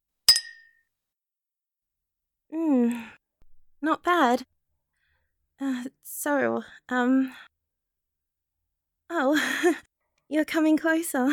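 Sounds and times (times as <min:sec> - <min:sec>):
wine glasses clinking in a toast: 0:00.3 - 0:00.7
speech: 0:02.5 - 0:03.2, 0:03.8 - 0:04.5, 0:05.6 - 0:07.5, 0:09.1 - 0:11.3.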